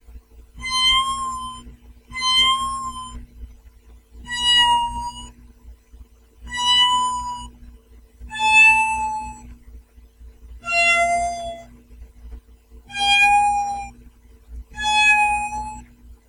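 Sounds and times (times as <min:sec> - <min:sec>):
PAiA 1550 Stringz'n'Thingz synthesizer meow with folding and tremolo: 0:00.6 - 0:01.6, 0:02.2 - 0:03.2, 0:04.3 - 0:05.3, 0:06.5 - 0:07.5, 0:08.3 - 0:09.4, 0:10.6 - 0:11.7, 0:12.9 - 0:13.9, 0:14.8 - 0:15.8.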